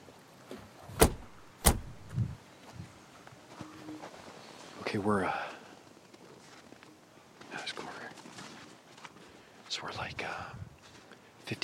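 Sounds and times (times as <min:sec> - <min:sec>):
soft footsteps on the ground: 0:00.0 - 0:11.6
car door clunks: 0:01.0 - 0:02.1
speech: 0:04.9 - 0:05.5, 0:11.5 - 0:11.6.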